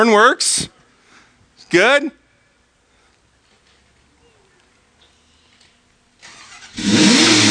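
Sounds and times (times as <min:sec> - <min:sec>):
speech: 0:00.0 - 0:00.8, 0:01.7 - 0:02.2
car engine starting: 0:06.2 - 0:07.4.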